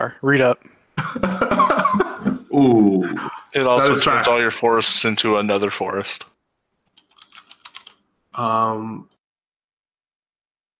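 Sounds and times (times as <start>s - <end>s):
speech: 0.0s - 6.3s, 8.4s - 9.1s
laughter: 1.0s - 4.4s
typing on a computer keyboard: 6.9s - 8.0s.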